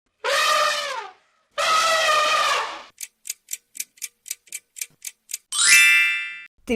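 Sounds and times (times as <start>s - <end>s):
elephant trumpet blasts: 0.2s - 2.9s
quick evenly spaced ticks: 3.0s - 5.5s.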